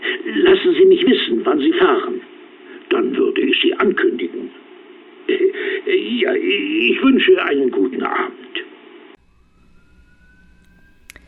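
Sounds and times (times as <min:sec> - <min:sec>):
speech: 0:00.3 - 0:02.2, 0:03.0 - 0:04.6, 0:05.3 - 0:08.5
police car siren wailing: 0:09.2 - 0:11.2.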